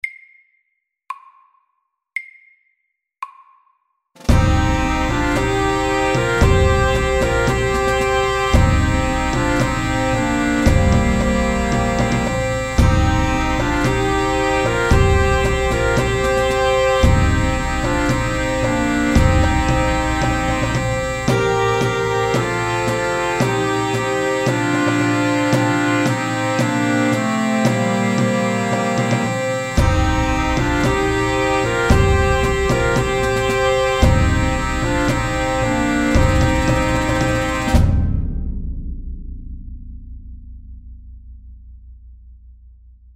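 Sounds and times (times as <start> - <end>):
drums: 4.2 - 40.9
pipes: 4.3 - 38.2.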